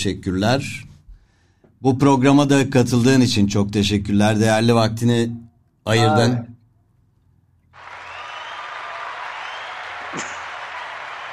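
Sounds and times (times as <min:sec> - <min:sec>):
speech: 0:00.0 - 0:00.9, 0:01.8 - 0:06.6
crowd applauding to send off a guest: 0:07.8 - 0:11.3
whoop: 0:07.8 - 0:11.3.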